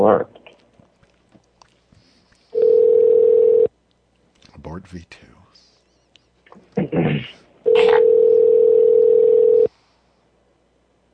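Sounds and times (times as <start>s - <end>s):
speech: 0.0s - 0.3s, 4.6s - 5.4s
telephone dial tone while calling a number: 2.6s - 3.7s, 7.7s - 9.7s.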